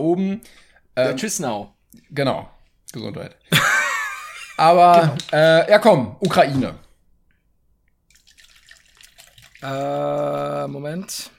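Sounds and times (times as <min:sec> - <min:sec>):
speech: 0:00.0 - 0:03.8, 0:04.6 - 0:06.8, 0:09.6 - 0:11.3
laughter: 0:03.5 - 0:05.3
person sipping water: 0:08.1 - 0:10.6.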